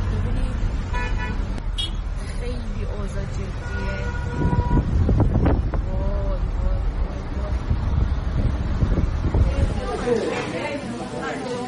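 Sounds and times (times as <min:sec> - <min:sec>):
road rumble of quarantine vehicles passing: 0:00.0 - 0:11.6
car horn toots: 0:00.9 - 0:02.1, 0:03.6 - 0:05.0.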